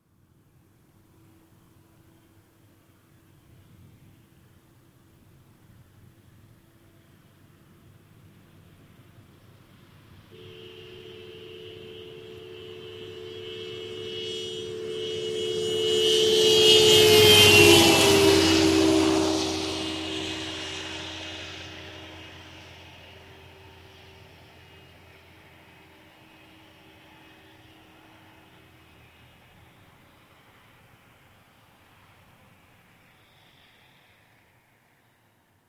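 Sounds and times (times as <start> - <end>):
car sound: 10.3 - 23.6.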